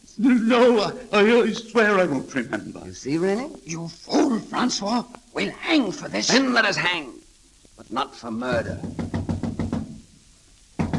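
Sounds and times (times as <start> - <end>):
speech: 0.2 - 7.2, 7.8 - 9.1
heavy knocks on a door: 8.5 - 10.0, 10.8 - 10.9.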